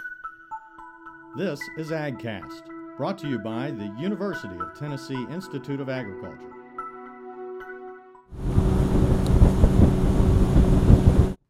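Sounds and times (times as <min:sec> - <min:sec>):
speech: 0:01.4 - 0:06.5
motorboat speeding across a lake: 0:08.4 - 0:11.4
soft humming tonal lead-in: 0:08.4 - 0:11.4
wind buffeting the microphone: 0:08.4 - 0:11.4.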